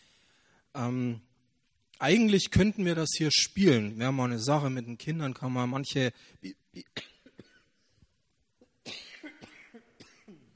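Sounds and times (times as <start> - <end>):
speech: 0.8 - 1.3, 2.0 - 7.1
person coughing: 6.8 - 7.8, 8.6 - 10.5
throat clearing: 8.6 - 10.5.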